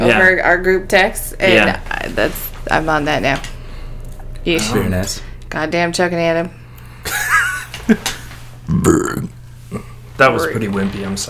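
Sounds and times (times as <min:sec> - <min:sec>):
laughter: 0:00.0 - 0:11.2
low hum: 0:00.0 - 0:11.2
speech: 0:00.1 - 0:03.6, 0:04.4 - 0:07.2, 0:07.9 - 0:11.2
person burping: 0:08.7 - 0:10.0.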